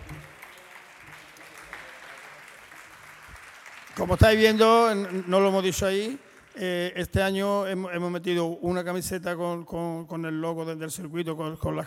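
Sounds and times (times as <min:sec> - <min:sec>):
crowd applauding: 0:00.0 - 0:07.0
speech: 0:04.0 - 0:11.8.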